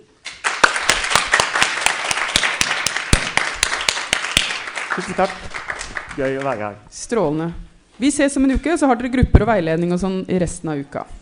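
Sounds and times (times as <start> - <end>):
room full of people applauding: 0.3 - 6.8
speech: 5.0 - 5.6, 6.2 - 11.2.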